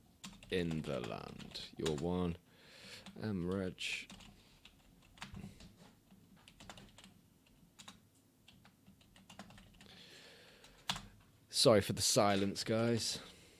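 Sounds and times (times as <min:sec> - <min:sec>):
quiet typing on a computer keyboard: 0:00.2 - 0:02.0, 0:03.0 - 0:05.7, 0:06.4 - 0:07.2, 0:07.8 - 0:09.9, 0:10.6 - 0:11.2
speech: 0:00.5 - 0:02.4, 0:03.0 - 0:04.3, 0:11.6 - 0:13.3.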